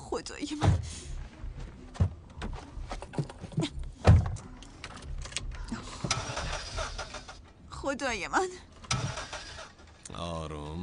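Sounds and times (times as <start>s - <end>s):
speech: 0.2s - 1.0s, 8.0s - 8.7s, 10.2s - 10.8s
car engine cranking and straining as it is started: 0.2s - 10.8s.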